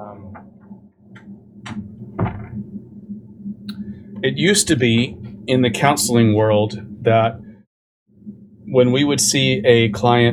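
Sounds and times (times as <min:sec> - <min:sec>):
low room hum: 0:00.0 - 0:10.3
door pushed shut with a solid thud: 0:01.6 - 0:02.7
speech: 0:04.2 - 0:07.4, 0:08.7 - 0:10.3.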